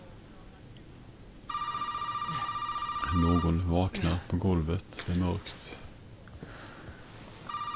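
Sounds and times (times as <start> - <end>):
mobile phone ringing with an electronic ringtone: 1.5 - 3.8, 7.5 - 7.7
speech: 3.1 - 5.9.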